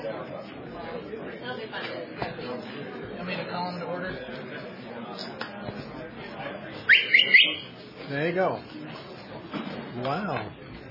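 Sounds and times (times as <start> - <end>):
low murmur of noise: 0.0 - 10.9
loud piercing human whistle: 6.9 - 7.7
speech: 8.1 - 8.8, 10.0 - 10.6.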